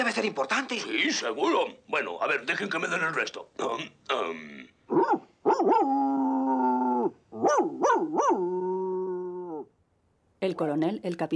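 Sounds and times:
speech: 0.1 - 6.0, 7.4 - 8.8, 10.4 - 11.3
dog giving a short bark: 4.9 - 5.9, 7.4 - 8.5
dog howling and whining: 4.9 - 9.8.

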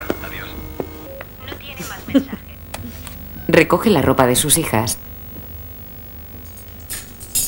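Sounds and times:
speech: 1.8 - 2.4, 3.5 - 5.1
metal cutlery clinking as utensils are pulled from a kitchen drawer: 6.5 - 7.4.

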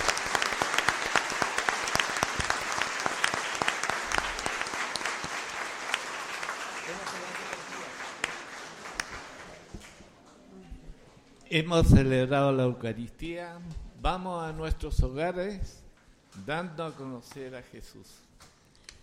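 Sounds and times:
audience applauding in church: 0.0 - 10.2
speech: 11.5 - 15.8, 16.4 - 18.2.

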